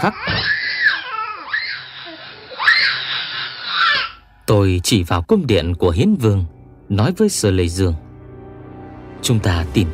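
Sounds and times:
speech: 0:00.0 - 0:00.5, 0:04.5 - 0:08.0, 0:09.2 - 0:09.9
wailing and crying from inside a cave: 0:00.0 - 0:04.2.

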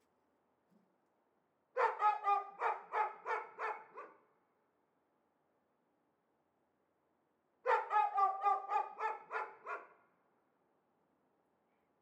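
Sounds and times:
dogs shut in cages barking excitedly: 0:01.8 - 0:04.2, 0:07.7 - 0:09.9.

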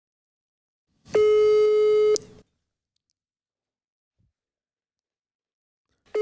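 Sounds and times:
telephone call tone over a phone's loudspeaker: 0:01.2 - 0:02.3.

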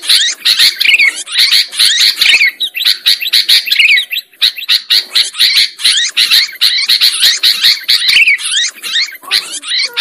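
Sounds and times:
lovebird twittering used as a lure for trapping birds: 0:00.0 - 0:09.9.

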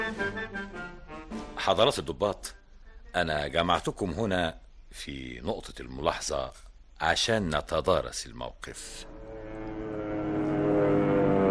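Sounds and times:
speech: 0:01.6 - 0:09.2
engines of enemy aircraft droning very high overhead: 0:09.0 - 0:11.4.

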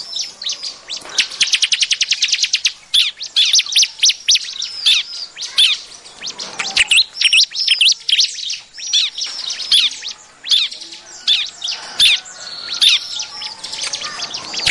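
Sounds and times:
bar-winged prinia high notes and chirps: 0:00.0 - 0:14.6.

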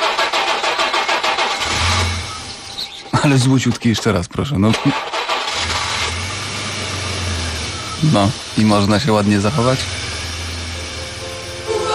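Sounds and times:
car engine starter cranking: 0:00.0 - 0:02.6, 0:04.7 - 0:07.6
car engine rumbling: 0:00.0 - 0:03.2, 0:04.9 - 0:11.9
speech: 0:03.2 - 0:05.2, 0:08.0 - 0:10.0.

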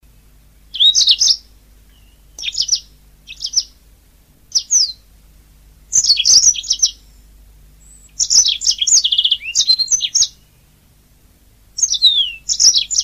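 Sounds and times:
Oriental magpie-robin whistling: 0:00.7 - 0:03.8, 0:04.5 - 0:05.0, 0:05.9 - 0:07.2, 0:07.8 - 0:10.7, 0:11.8 - 0:13.0.

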